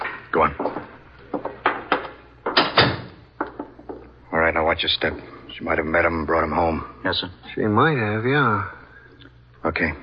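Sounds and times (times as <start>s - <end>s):
speech: 0.4s - 0.7s, 4.8s - 8.8s, 9.6s - 10.0s
door thump: 1.6s - 4.0s.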